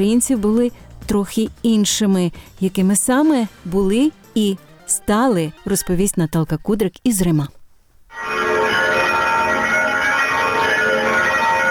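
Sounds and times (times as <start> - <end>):
speech: 0.0 - 8.2
Easter church bells pealing in Rome: 8.1 - 11.7.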